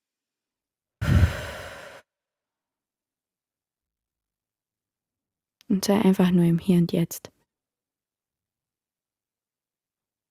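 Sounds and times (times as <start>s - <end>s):
slow deep breath into the belly during guided meditation: 1.0s - 2.1s
speech: 5.7s - 7.4s.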